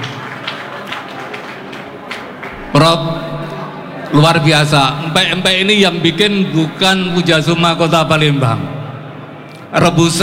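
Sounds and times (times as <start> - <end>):
audience applauding: 0.0 - 2.8
speech: 2.8 - 3.4, 4.1 - 8.8, 9.7 - 10.2.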